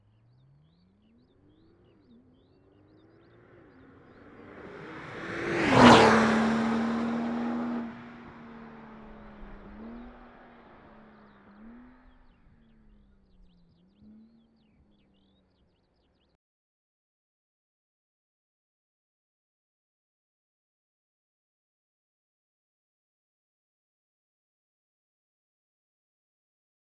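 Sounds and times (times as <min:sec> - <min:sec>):
Porsche 911 Turbo passing by: 0:00.1 - 0:15.9.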